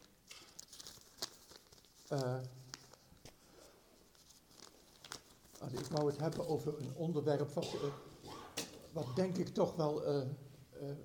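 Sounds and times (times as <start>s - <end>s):
paper being handled with crinkles and rustling: 0.0s - 7.3s
speech: 2.1s - 2.6s, 5.6s - 8.1s, 8.9s - 11.0s.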